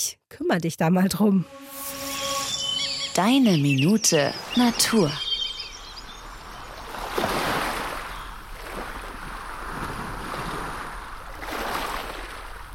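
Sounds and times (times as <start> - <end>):
speech: 0.0 - 1.8, 3.2 - 5.2
Baltic Sea waves washing onto a shore: 4.0 - 12.7.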